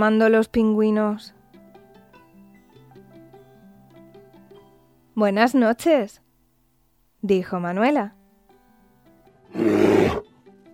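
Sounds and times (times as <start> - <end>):
speech: 0.0 - 1.4, 5.2 - 6.2, 7.2 - 8.2, 9.5 - 10.2
polar bear growl: 9.5 - 10.2.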